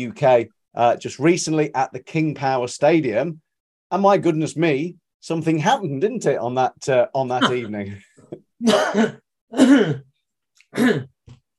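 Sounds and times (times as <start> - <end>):
speech: 0.0 - 10.1, 10.7 - 11.1
person clearing throat: 7.4 - 8.0, 8.6 - 10.1, 10.7 - 11.3
person coughing: 7.4 - 8.0, 8.6 - 10.1, 10.7 - 11.2.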